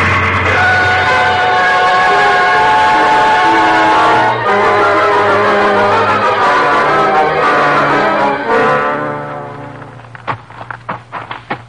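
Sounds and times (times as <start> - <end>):
train engine straining up a hill: 0.0 - 11.6
sharp taps: 10.2 - 11.6.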